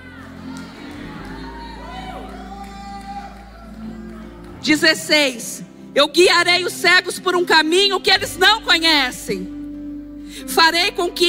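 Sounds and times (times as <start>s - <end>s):
audience shouting and cheering with whoops and cries: 0.0s - 5.8s
speech: 4.6s - 9.5s, 10.4s - 11.2s.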